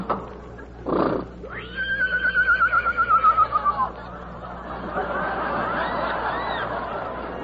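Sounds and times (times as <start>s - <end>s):
lame horse whinnying in a bitter storm: 0.9s - 3.6s
laughter: 2.8s - 7.4s.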